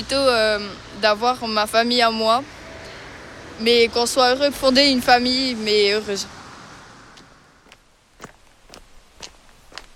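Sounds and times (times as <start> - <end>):
speech: 0.0 - 2.6, 3.6 - 6.4
footsteps of a person walking: 7.2 - 9.9.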